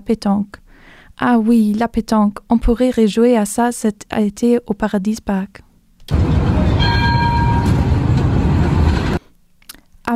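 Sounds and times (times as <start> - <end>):
speech: 0.1 - 0.6, 1.2 - 6.3
high tonal whine: 6.1 - 9.2
tram or train rumbling past: 6.1 - 9.2.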